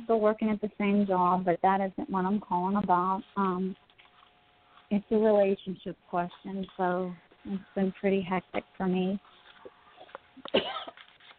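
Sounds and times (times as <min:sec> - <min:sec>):
speech: 0:00.1 - 0:03.8, 0:04.9 - 0:09.3, 0:10.5 - 0:11.0
harsh raspy cough: 0:10.5 - 0:11.0.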